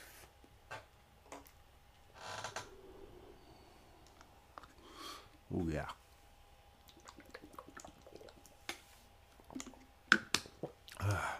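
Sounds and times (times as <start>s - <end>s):
breathy exhale: 2.2s - 5.5s
speech: 5.6s - 6.0s
person gulping down water: 6.8s - 8.7s, 9.4s - 11.3s.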